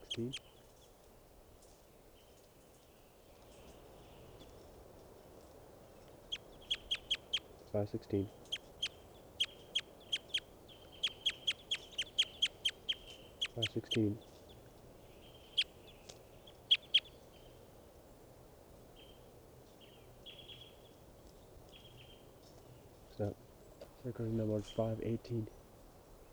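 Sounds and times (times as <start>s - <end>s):
bird chirping: 0.0s - 0.8s, 5.9s - 18.2s, 18.9s - 25.6s
speech: 0.2s - 0.5s, 7.7s - 8.5s, 13.6s - 14.3s, 23.2s - 23.4s, 24.0s - 25.6s.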